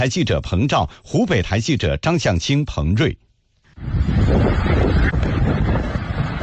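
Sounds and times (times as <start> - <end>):
speech: 0.0 - 3.2
strong thunderstorm wind buffeting the microphone in Huangzhou District, Huanggang, Hubei, China: 3.7 - 6.4.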